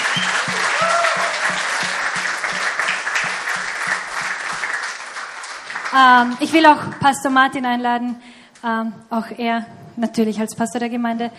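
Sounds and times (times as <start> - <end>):
audience applause: 0.0 - 6.9
speech: 6.0 - 11.3.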